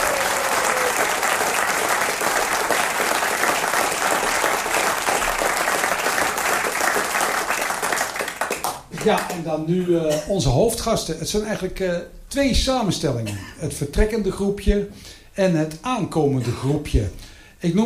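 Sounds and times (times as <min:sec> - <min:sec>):
large audience applause: 0:00.0 - 0:09.4
speech: 0:09.0 - 0:17.8.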